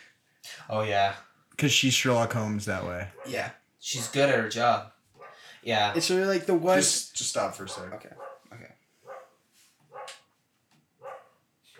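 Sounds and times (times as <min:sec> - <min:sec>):
speech: 0:00.7 - 0:05.0, 0:05.6 - 0:08.8
dog barking: 0:05.2 - 0:05.5, 0:07.6 - 0:10.3, 0:11.0 - 0:11.7.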